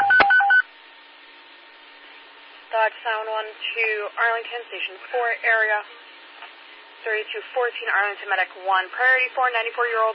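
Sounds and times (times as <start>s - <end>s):
telephone keypad dual-tone dialing tones: 0.0s - 0.6s
speech: 2.9s - 6.1s, 7.0s - 10.1s.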